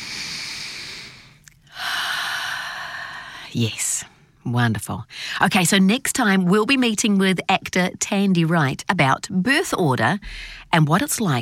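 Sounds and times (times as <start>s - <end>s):
big deep breath: 0.0s - 3.5s, 10.2s - 10.7s
speech: 3.5s - 11.4s.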